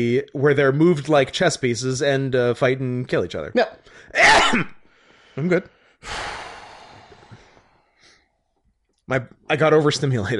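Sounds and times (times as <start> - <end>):
speech: 0.0 - 4.8, 5.4 - 6.3, 9.1 - 10.3
combined sneeze and cough: 4.2 - 4.8.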